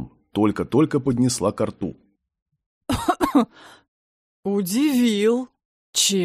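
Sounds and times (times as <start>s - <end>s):
speech: 0.4s - 2.0s, 2.9s - 3.8s, 4.4s - 6.2s
voice imitating a woman coughing after choking on tonic: 2.9s - 3.5s.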